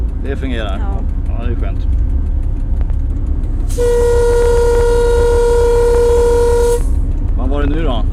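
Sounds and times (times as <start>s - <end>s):
low rumbling train engine: 0.0s - 8.1s
speech: 0.2s - 2.0s, 3.7s - 4.7s, 7.5s - 8.1s
train horn blast signalling before a viaduct: 3.7s - 7.1s.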